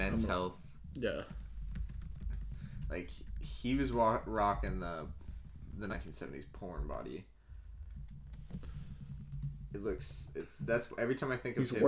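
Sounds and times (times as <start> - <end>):
speech: 0.2 - 1.4, 2.9 - 5.2, 5.8 - 7.3, 9.7 - 11.8
soft typing on a computer keyboard: 1.2 - 5.5, 7.8 - 9.9.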